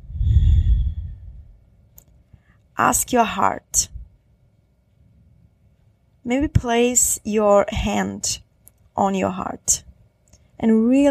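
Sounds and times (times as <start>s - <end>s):
deep breath during a guided reflection: 0.0s - 1.5s
speech: 2.8s - 3.9s, 6.3s - 8.4s, 9.0s - 9.9s, 10.6s - 11.0s.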